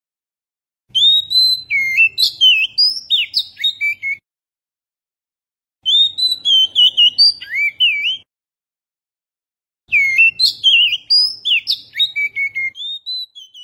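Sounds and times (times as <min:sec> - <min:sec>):
Oriental magpie-robin singing: 0:00.9 - 0:04.2, 0:05.8 - 0:08.3, 0:09.9 - 0:13.6.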